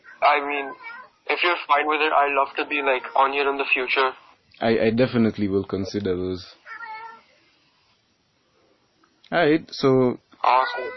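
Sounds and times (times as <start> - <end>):
cat meowing: 0.0 - 1.2, 2.6 - 3.4, 6.6 - 7.3, 10.5 - 10.9
faint hiss: 0.0 - 10.9
speech: 0.2 - 6.6, 9.3 - 10.9.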